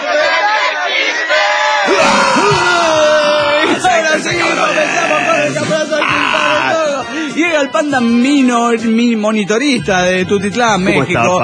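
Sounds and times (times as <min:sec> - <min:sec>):
large crowd yelling together on a countdown cue: 0:00.0 - 0:07.2
speech: 0:07.6 - 0:11.4.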